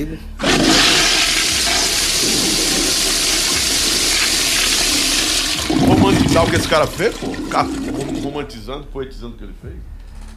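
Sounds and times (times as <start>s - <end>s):
speech: 0.0s - 0.9s, 5.8s - 10.0s
toilet flushing with rushing, gurgling water: 0.4s - 8.4s.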